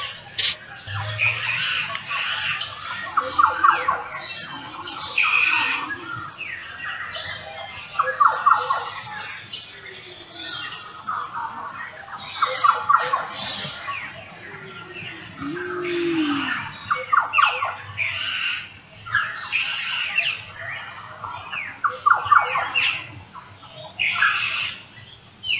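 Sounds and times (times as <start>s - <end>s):
black butcherbird fluting song: 0.0s - 23.1s.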